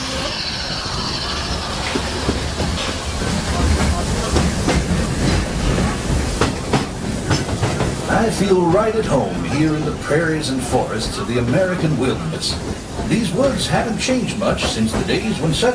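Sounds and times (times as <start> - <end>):
train rolling along the rails through the American wilderness: 0.0 - 15.7
rhythmic clickety-clack of train wheels on rails: 1.7 - 9.2, 11.0 - 15.7
speech: 8.3 - 15.7.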